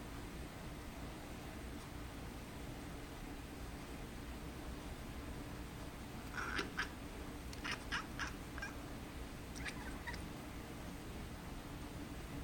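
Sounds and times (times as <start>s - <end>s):
constant background hum: 0.0s - 12.4s
cat meowing: 6.4s - 6.9s, 9.6s - 10.2s.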